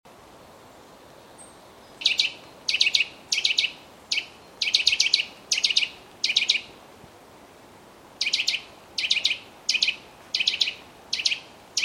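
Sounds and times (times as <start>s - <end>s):
Eurasian nuthatch Sitta europaea piping calls: 1.4s - 6.7s, 8.2s - 11.8s.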